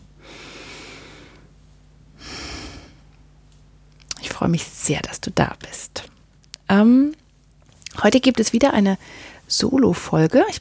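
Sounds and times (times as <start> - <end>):
deep breath: 0.2 - 1.5, 2.2 - 3.1, 9.0 - 9.5
speech: 4.4 - 6.1, 6.7 - 7.2, 8.0 - 10.5.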